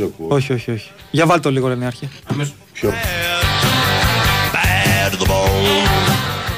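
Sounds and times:
speech: 0.0 - 3.8, 5.1 - 6.3
song with sung vocal melody and full instrumental backing: 2.3 - 6.5.

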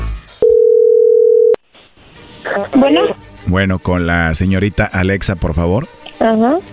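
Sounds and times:
telephone dial tone: 0.4 - 1.6
speech: 2.6 - 6.7.

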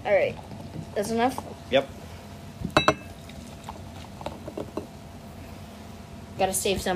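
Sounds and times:
speech: 0.0 - 2.0, 6.4 - 6.9
glasses clinking: 2.7 - 3.2.

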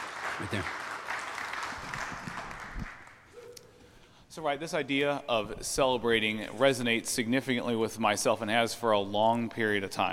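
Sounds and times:
audience clapping: 0.0 - 3.3
speech: 0.4 - 0.8, 4.4 - 10.1.

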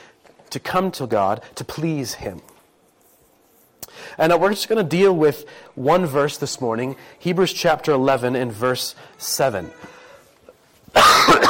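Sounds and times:
speech: 0.5 - 2.5, 4.2 - 10.0
preacher coughing during a sermon: 10.9 - 11.4.

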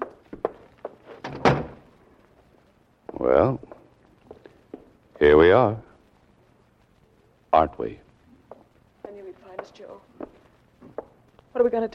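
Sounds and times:
door pushed shut with a heavy thud: 1.2 - 1.8
speech: 3.2 - 3.7, 5.2 - 5.8, 7.6 - 8.1, 11.6 - 11.9.

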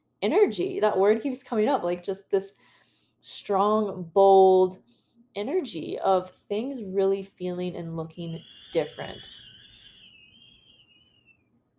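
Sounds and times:
speech: 0.2 - 9.4
strong wind whistling in Boulder: 8.2 - 11.0.

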